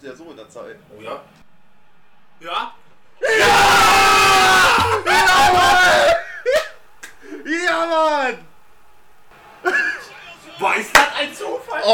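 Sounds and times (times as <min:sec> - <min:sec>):
speech: 0:00.0 - 0:01.5, 0:02.4 - 0:03.5, 0:10.8 - 0:11.9
huge stadium crowd cheering and shouting in celebration of a goal: 0:01.5 - 0:09.3.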